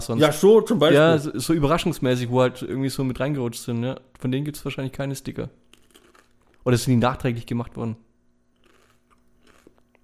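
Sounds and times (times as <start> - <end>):
speech: 0.0 - 5.6, 6.6 - 8.0
faint steady hum: 0.0 - 10.0
quiet chewing with soft crunchy bites: 5.7 - 6.6, 8.5 - 10.0.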